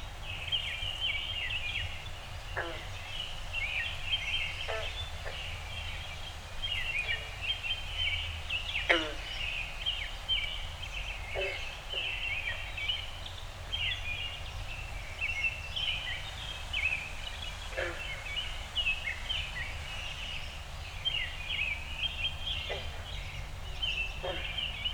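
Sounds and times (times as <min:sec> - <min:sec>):
backyard dawn chorus of birds chirping on a small inland lake: 0:00.0 - 0:24.9.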